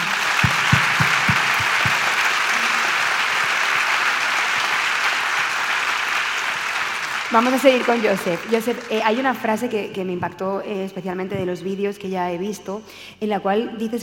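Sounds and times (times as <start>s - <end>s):
applause from a sizable audience: 0.0s - 9.1s
sharp low thumps: 0.4s - 2.2s
speech: 7.3s - 14.0s.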